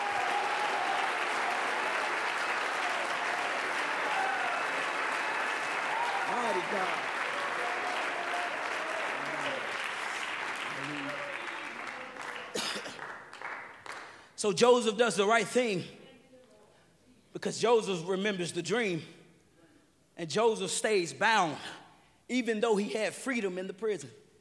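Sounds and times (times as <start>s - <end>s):
church audience clapping in praise: 0.0s - 14.4s
speech: 14.4s - 16.0s, 17.4s - 19.2s, 20.2s - 24.2s.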